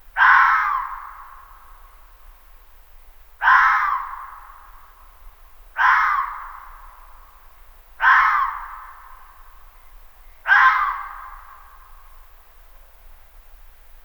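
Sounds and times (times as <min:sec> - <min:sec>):
male red fox high-pitched rasping barking: 0:00.2 - 0:01.2, 0:03.4 - 0:04.4, 0:05.8 - 0:06.8, 0:08.0 - 0:09.0, 0:10.5 - 0:11.4.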